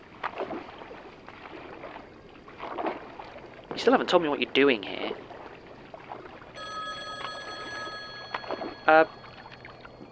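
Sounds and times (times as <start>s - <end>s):
speech: 3.8s - 5.0s, 8.9s - 9.2s
payphone electronic ring: 6.6s - 10.1s.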